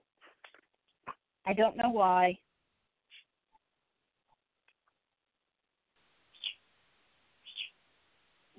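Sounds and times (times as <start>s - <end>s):
speech: 1.5s - 2.4s
steady hiss: 6.0s - 8.5s
pet bird chirping: 6.3s - 6.7s, 7.4s - 7.8s
pet bird screeching: 6.4s - 6.6s, 7.4s - 7.8s.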